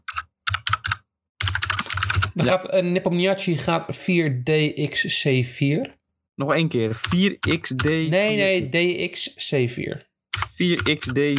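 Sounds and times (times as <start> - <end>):
typing on a computer keyboard: 0.0 - 2.4, 7.0 - 8.0, 10.4 - 11.3
speech: 2.4 - 11.3.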